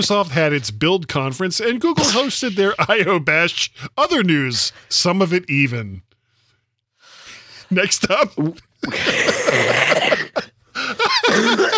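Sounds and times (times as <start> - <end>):
speech: 0.0 - 6.1, 7.7 - 11.7
person coughing in a harsh extended fit: 2.0 - 2.8, 8.4 - 10.6, 11.2 - 11.7
person sputtering: 8.3 - 10.4
laughter: 10.8 - 11.7.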